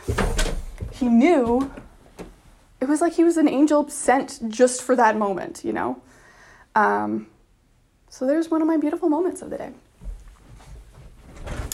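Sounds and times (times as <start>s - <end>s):
door sliding or swinging shut: 0.0s - 1.0s, 11.2s - 11.7s
speech: 1.0s - 1.8s, 2.8s - 6.2s, 6.8s - 7.3s, 8.1s - 9.8s.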